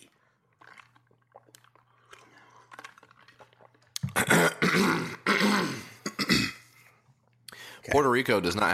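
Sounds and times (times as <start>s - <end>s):
person clearing throat loudly: 4.0s - 6.7s
speech: 7.9s - 8.7s.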